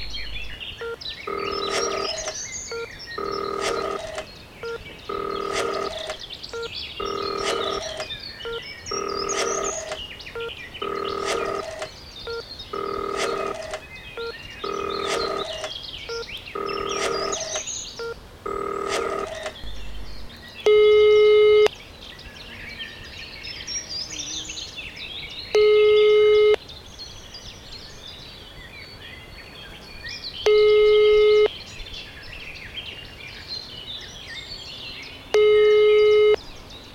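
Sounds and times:
faint noise: 0.0 - 36.9
telephone tones during a call to a vehicle inspection office: 0.8 - 19.7, 20.7 - 21.7, 25.6 - 26.6, 30.5 - 31.5, 35.4 - 36.4.

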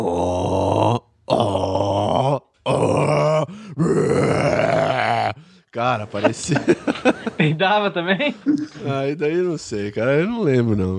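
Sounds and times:
voice imitating loud snoring: 0.0 - 5.4
laughter: 5.8 - 10.2
speech: 5.8 - 10.9.

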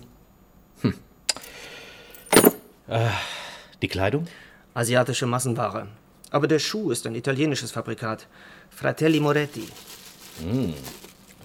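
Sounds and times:
door keys on a key ring jangling: 1.3 - 1.6, 2.2 - 2.6
speech: 2.9 - 11.4.

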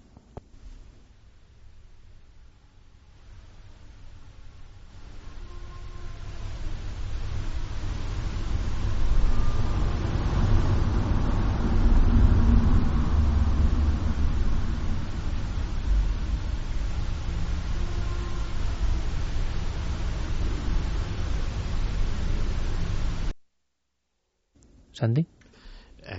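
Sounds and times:
car engine in a played recording: 7.0 - 23.3
speech: 25.0 - 25.3.

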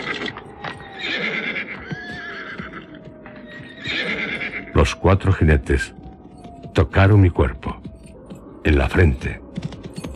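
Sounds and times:
horses neighing with spirit: 0.0 - 4.8
clip-clop of hooves: 0.1 - 4.8, 5.6 - 10.1
horses snorting: 1.0 - 3.1, 3.8 - 4.7
speech: 4.8 - 6.0, 6.8 - 7.9, 8.7 - 9.4.

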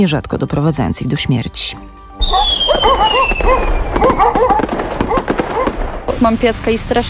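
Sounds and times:
speech: 0.0 - 3.8, 6.2 - 7.0
New Year's Eve firecrackers exploding: 2.2 - 7.0.

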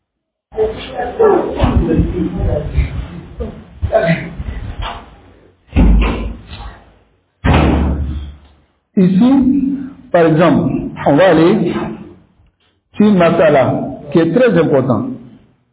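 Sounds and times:
speech: 0.6 - 4.2, 9.0 - 11.9, 13.0 - 15.1
door slamming: 5.7 - 6.6, 7.4 - 8.4.

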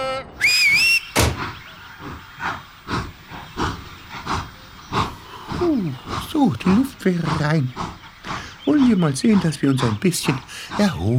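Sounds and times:
shrill high conductor's whistle: 0.4 - 1.3
departing train engine hissing chuffs: 0.4 - 11.1
speech: 5.6 - 7.9, 8.7 - 11.1.

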